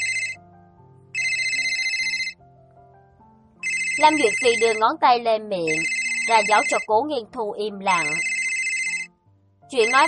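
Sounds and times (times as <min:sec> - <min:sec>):
phone ringtone for an incoming call at a restaurant table: 0:00.0 - 0:00.4, 0:01.2 - 0:02.4, 0:03.6 - 0:05.0, 0:05.7 - 0:06.9, 0:07.9 - 0:09.1, 0:09.8 - 0:10.0
speech: 0:04.0 - 0:08.3, 0:09.7 - 0:10.0.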